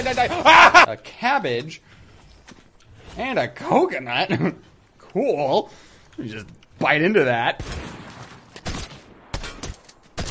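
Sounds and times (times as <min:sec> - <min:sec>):
speech: 0:00.0 - 0:02.6, 0:03.2 - 0:08.0
steady noisy video game background: 0:00.0 - 0:10.2
laughter: 0:00.2 - 0:00.9
shotgun blasts in a video game: 0:07.6 - 0:10.2.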